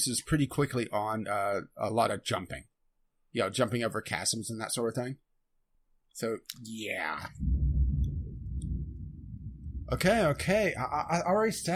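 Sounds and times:
speech: 0:00.0 - 0:02.7, 0:03.3 - 0:05.3, 0:06.2 - 0:07.6, 0:09.9 - 0:11.7
deep steady rumble of thunder: 0:07.3 - 0:11.7.

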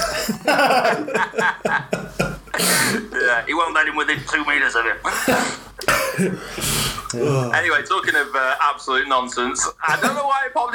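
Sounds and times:
harsh coughs: 0:00.0 - 0:00.6, 0:02.5 - 0:03.1, 0:05.1 - 0:07.1
laughter: 0:00.0 - 0:02.6, 0:09.8 - 0:10.2
speech: 0:00.3 - 0:10.7.

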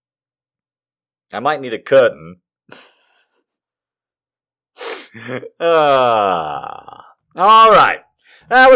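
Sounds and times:
speech: 0:01.3 - 0:02.9, 0:05.2 - 0:08.7
person gasping for air with wheezy labored breaths: 0:04.8 - 0:07.1.

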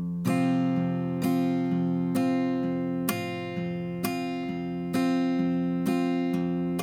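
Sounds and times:
acoustic guitar played with thumb on low E string and index finger strumming: 0:00.0 - 0:06.8.

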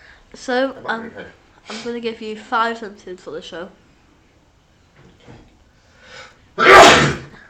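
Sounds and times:
quiet inhale before a sneeze: 0:00.0 - 0:00.3, 0:05.7 - 0:06.5
speech: 0:00.3 - 0:03.8
loud explosive sneeze: 0:06.6 - 0:07.4.

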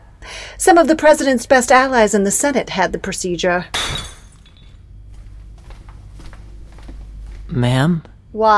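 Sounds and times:
speech: 0:00.6 - 0:04.0, 0:07.6 - 0:08.5
glass whiskey bottle shattering: 0:03.7 - 0:04.8
glass shards tinkling: 0:03.8 - 0:04.8.

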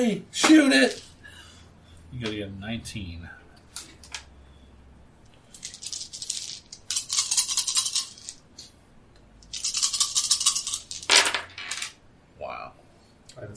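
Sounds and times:
speech: 0:00.0 - 0:01.1, 0:02.1 - 0:03.4
large handful of dice shaken and rolled: 0:03.8 - 0:04.3, 0:05.5 - 0:08.6, 0:09.4 - 0:12.0.

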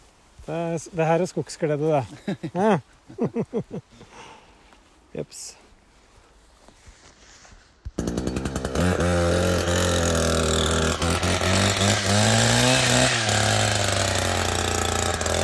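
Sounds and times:
speech: 0:00.5 - 0:04.3, 0:05.2 - 0:05.6
laughter: 0:02.1 - 0:04.0
petrol chainsaw pull-started and roaring in a forest: 0:08.0 - 0:15.4.

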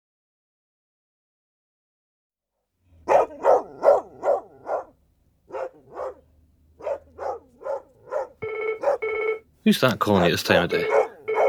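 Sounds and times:
dog barking: 0:03.0 - 0:09.2, 0:10.8 - 0:11.4
speech: 0:09.6 - 0:11.0.

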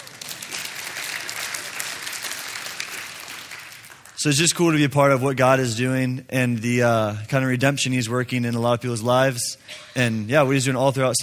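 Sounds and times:
church audience applauding: 0:00.0 - 0:04.5
speech: 0:04.2 - 0:11.2.

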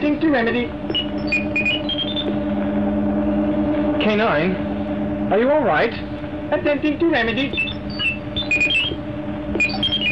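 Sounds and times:
steady low mechanical hum: 0:00.0 - 0:10.1
speech: 0:00.3 - 0:01.6, 0:04.0 - 0:04.7, 0:05.3 - 0:07.6
high warbling chirps of a robot alarm: 0:00.4 - 0:02.5, 0:07.2 - 0:09.0, 0:09.6 - 0:10.1
robot electronic alarm beeping: 0:00.4 - 0:02.5, 0:07.2 - 0:10.1.

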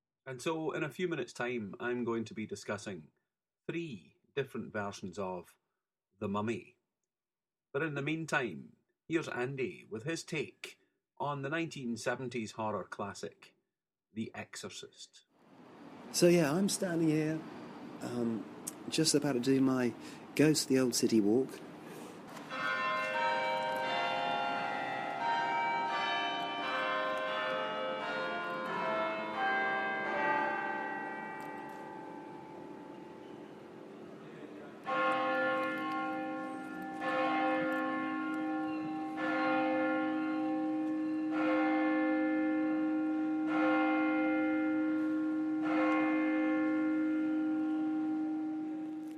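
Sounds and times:
speech: 0:00.3 - 0:05.6, 0:06.2 - 0:06.8, 0:07.7 - 0:15.3, 0:16.1 - 0:21.7
church bells of St. Mary-le-Bow in the City of London pealing: 0:16.0 - 0:21.6, 0:22.3 - 0:49.1
single deep church bell tolling six o'clock: 0:22.4 - 0:49.0.

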